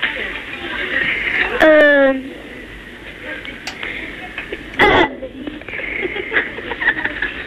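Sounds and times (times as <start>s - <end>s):
boy burping over a telephone line: 1.6s - 2.2s, 4.8s - 5.2s
laughter: 4.3s - 7.4s.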